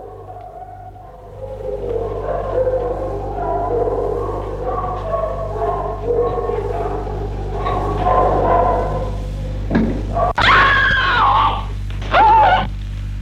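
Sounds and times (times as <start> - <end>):
soft strained vocal sounds: 0.0 - 10.4
woman screaming in wavering drawn-out cries: 10.4 - 12.7.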